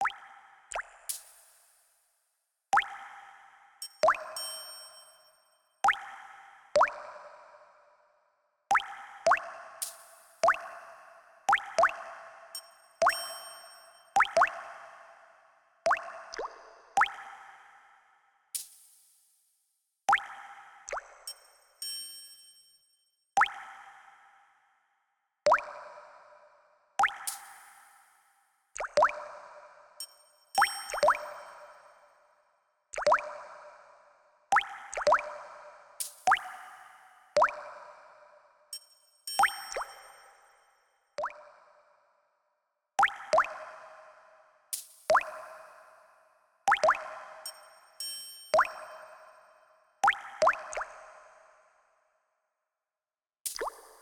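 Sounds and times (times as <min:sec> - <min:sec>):
water drops with reverb: 0:00.0 - 0:01.2, 0:02.8 - 0:03.2, 0:03.8 - 0:05.0, 0:05.8 - 0:07.2, 0:08.7 - 0:10.7, 0:11.5 - 0:14.6, 0:15.9 - 0:17.4, 0:20.1 - 0:22.1, 0:23.4 - 0:23.9, 0:25.5 - 0:25.8, 0:27.0 - 0:27.6, 0:28.8 - 0:29.3, 0:30.0 - 0:31.9, 0:33.0 - 0:33.5, 0:34.5 - 0:35.4, 0:36.0 - 0:36.8, 0:37.4 - 0:37.7, 0:38.8 - 0:40.3, 0:41.2 - 0:41.5, 0:43.0 - 0:43.6, 0:44.8 - 0:45.6, 0:46.7 - 0:49.3, 0:50.0 - 0:51.0, 0:53.5 - 0:54.0
triangle with reverb: 0:03.8 - 0:05.6, 0:21.3 - 0:22.8, 0:30.0 - 0:31.9, 0:38.8 - 0:40.7, 0:47.5 - 0:49.5.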